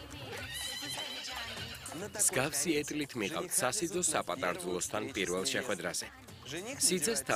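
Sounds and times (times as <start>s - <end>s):
Thoroughbred horses harnessed to a wedding carriage whinnying: 0.4s - 2.1s
speech: 2.0s - 7.3s.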